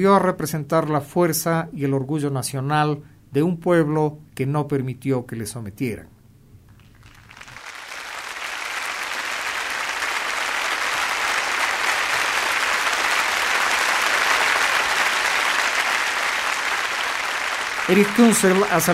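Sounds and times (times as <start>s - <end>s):
speech: 0.0s - 6.2s, 17.9s - 18.9s
large audience applauding in a reverberant concert hall: 6.8s - 18.9s.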